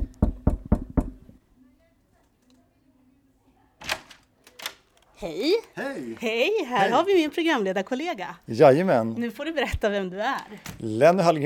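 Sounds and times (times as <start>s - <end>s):
knocking on an office door: 0.0s - 1.4s
speech: 5.2s - 11.4s.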